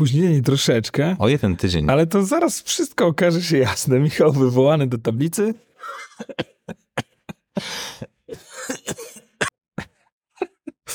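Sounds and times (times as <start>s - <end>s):
speech: 0.0s - 8.8s
laughter: 5.8s - 7.5s
person with pneumonia coughing: 5.8s - 10.9s.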